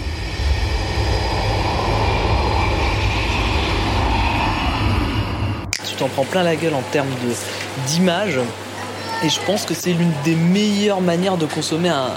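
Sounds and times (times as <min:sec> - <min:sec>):
jet engine roaring: 0:00.0 - 0:07.8
speech: 0:06.0 - 0:08.6, 0:09.2 - 0:12.1.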